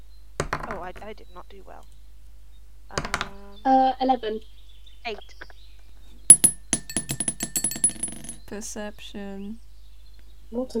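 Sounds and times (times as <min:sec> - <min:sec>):
speech: 0:00.7 - 0:02.0, 0:02.9 - 0:05.5, 0:08.5 - 0:09.6, 0:10.5 - 0:10.7
dice rattling in a hard dice roller made from a candle: 0:03.0 - 0:03.4, 0:06.3 - 0:08.4.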